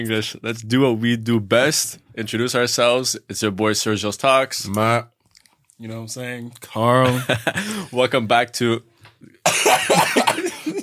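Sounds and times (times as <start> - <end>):
speech: 0.0 - 5.2, 5.8 - 10.2
harsh raspy coughing: 9.4 - 10.8.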